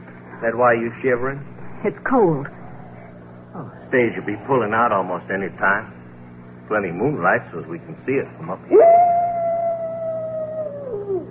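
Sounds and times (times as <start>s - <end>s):
speech: 0.4s - 2.6s, 3.6s - 6.0s, 6.7s - 9.1s
coyote howling at night: 8.7s - 11.2s.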